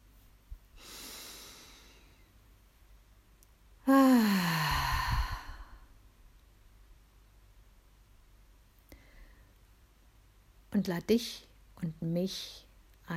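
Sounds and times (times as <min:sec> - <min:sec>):
deep breath in and out during a guided relaxation: 0:00.8 - 0:02.4, 0:03.9 - 0:05.9, 0:08.9 - 0:09.6
speech: 0:10.8 - 0:13.1.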